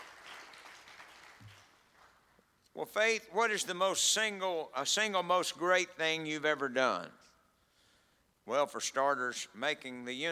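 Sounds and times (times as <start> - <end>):
audience clapping: 0.0 - 2.5
speech: 2.8 - 7.2, 8.5 - 10.3.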